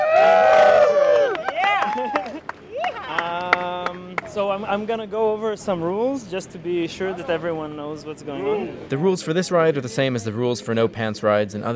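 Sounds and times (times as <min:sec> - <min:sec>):
small group of young men and women cheering and whooping: 0:00.0 - 0:03.6
scattered clapping: 0:01.0 - 0:04.4
speech: 0:04.6 - 0:11.7.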